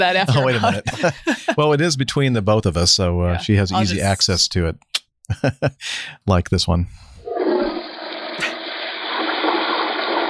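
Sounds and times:
laughter: 0.0s - 1.7s, 5.3s - 5.9s
speech: 0.0s - 7.1s
toilet flush played from a soundboard: 7.2s - 10.2s.

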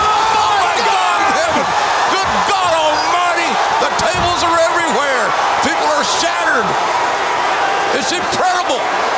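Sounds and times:
whoops and shouts from a wrestling crowd: 0.0s - 6.8s
packed arena crowd cheering at a wrestling match: 0.0s - 9.1s.

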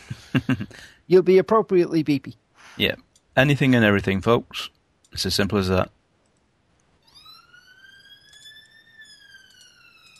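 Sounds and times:
faint noise: 0.0s - 10.1s
speech: 0.4s - 6.0s
wailing emergency vehicle siren passing outside: 7.0s - 10.1s.

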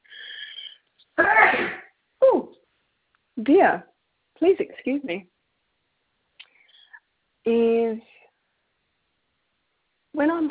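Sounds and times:
person sneezing: 0.2s - 1.9s
speech: 3.4s - 5.3s, 7.4s - 8.1s, 10.2s - 10.5s.

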